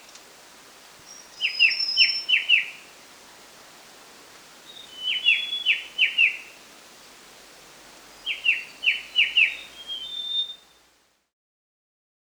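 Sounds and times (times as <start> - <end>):
white-browed shrike-babbler calling: 1.1 - 2.9, 4.7 - 6.6, 8.2 - 10.7.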